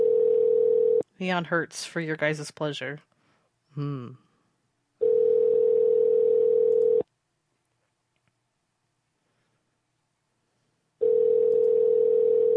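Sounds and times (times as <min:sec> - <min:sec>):
telephone ringing tone heard down the line: 0:00.0 - 0:01.0, 0:05.0 - 0:07.0, 0:11.0 - 0:12.5
speech: 0:01.2 - 0:03.1, 0:03.8 - 0:04.2.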